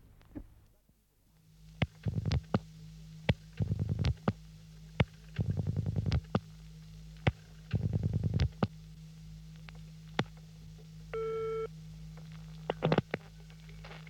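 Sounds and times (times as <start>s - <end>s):
low constant hum: 0.0s - 14.0s
bursts of buzzing phone line tones: 1.4s - 14.0s
brief steady phone line tone: 11.1s - 11.7s
phone line beeps as a number is dialed: 11.2s - 11.7s.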